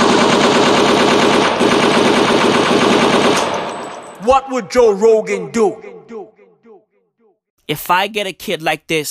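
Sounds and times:
loud continuous automatic gunfire: 0.0 - 3.9
speech: 4.3 - 6.0, 7.7 - 9.1.

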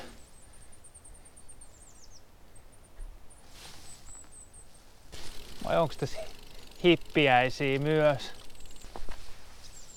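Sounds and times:
willow tit and other tits calling in a mixed flock: 0.0 - 9.9
rustling footsteps: 5.0 - 6.8, 8.2 - 9.8
speech: 5.7 - 8.4.

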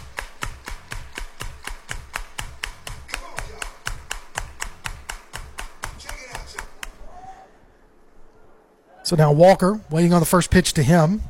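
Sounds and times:
crowd clapping in unison in a steady fast rhythm: 0.0 - 7.0
speech: 9.1 - 11.2.

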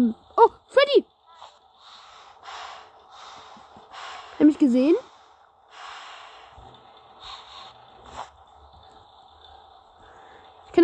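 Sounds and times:
pet snorting and breathing heavily: 1.4 - 8.5
speech: 4.4 - 5.1.

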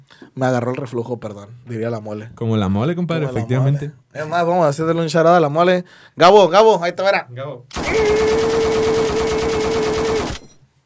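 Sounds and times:
speech: 0.4 - 8.8
rapid burst of gunfire: 7.7 - 10.6.

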